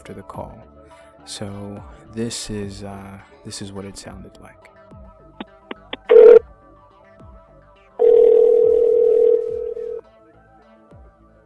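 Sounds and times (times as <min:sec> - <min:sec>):
speech: 0:00.1 - 0:04.8
outgoing phone call dialing blips: 0:05.7 - 0:06.4, 0:08.0 - 0:10.0.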